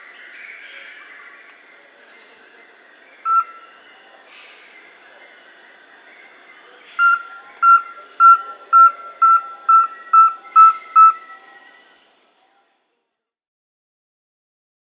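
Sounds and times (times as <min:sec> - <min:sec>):
rusty-belted tapaculo whistled song in South America: 0:03.3 - 0:03.6, 0:07.0 - 0:12.0.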